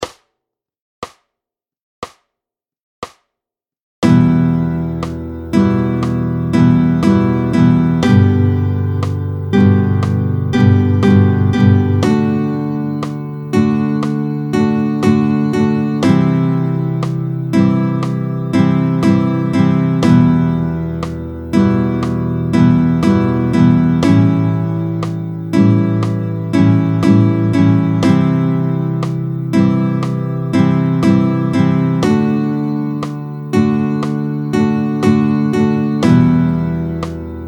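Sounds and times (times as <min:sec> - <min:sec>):
rhythm pattern: 0:04.0 - 0:37.4.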